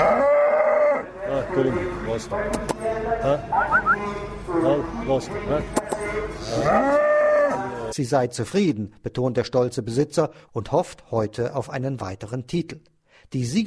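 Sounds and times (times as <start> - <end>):
cow mooing: 0.0 - 1.1, 6.4 - 7.8
speech: 1.6 - 7.1, 8.0 - 13.6.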